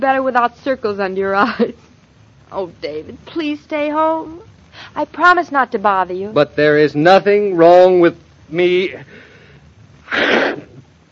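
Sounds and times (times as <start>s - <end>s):
speech: 0.0s - 1.8s, 2.5s - 9.3s, 10.1s - 10.7s
loud sneeze: 10.0s - 10.8s.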